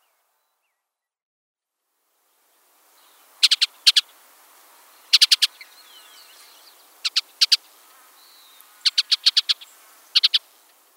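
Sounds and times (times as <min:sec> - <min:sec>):
bluebird chattering: 0:05.1 - 0:06.1, 0:07.0 - 0:07.6, 0:08.8 - 0:10.4.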